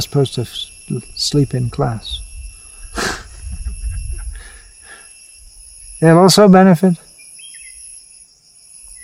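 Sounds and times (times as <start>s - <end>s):
speech: 0.0s - 2.2s, 6.0s - 7.0s
chorus of crickets trilling: 0.0s - 9.0s.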